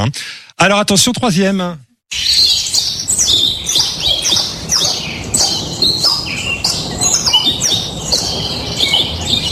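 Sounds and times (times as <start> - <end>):
speech: 0.0 - 2.4
many small caged birds chirping and tweeting: 2.1 - 9.5.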